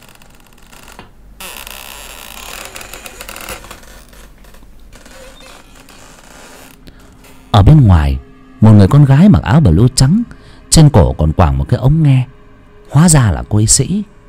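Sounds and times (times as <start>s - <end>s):
door hinges creaking as a door slowly opens: 0.0s - 7.6s
speech: 7.7s - 14.2s.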